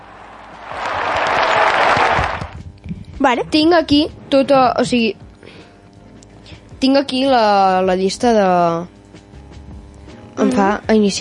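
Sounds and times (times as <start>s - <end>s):
small group clapping: 0.0s - 2.7s
speech: 3.2s - 5.2s, 6.8s - 9.0s, 10.4s - 11.1s.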